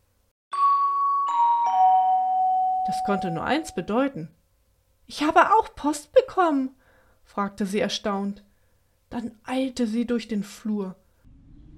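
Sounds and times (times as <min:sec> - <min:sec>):
doorbell chiming: 0:00.5 - 0:03.9
speech: 0:02.9 - 0:04.4, 0:05.1 - 0:08.5, 0:09.1 - 0:11.0.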